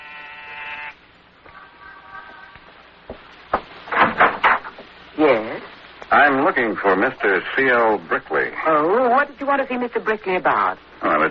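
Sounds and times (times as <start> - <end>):
apartment electric door buzzer being pressed: 0.0 - 1.0
clattering thuds: 3.1 - 5.0
speech: 6.1 - 11.3.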